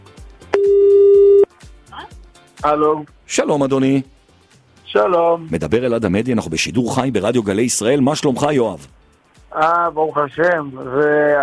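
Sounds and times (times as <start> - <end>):
telephone line tone on a call into a live radio quiz: 0.5 - 1.5
speech: 2.6 - 4.2, 4.9 - 11.4.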